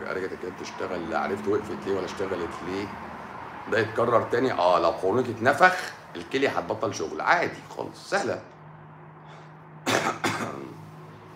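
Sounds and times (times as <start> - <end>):
speech: 0.1 - 3.1, 3.7 - 8.5
person coughing from smoke: 9.8 - 10.8.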